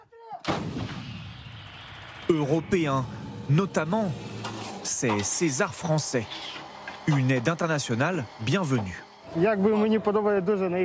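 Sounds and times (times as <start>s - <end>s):
artillery cannon shot with rumbling boom: 0.4s - 2.2s
speech: 2.3s - 4.3s, 4.9s - 10.8s
faint tonal noise: 2.3s - 10.8s.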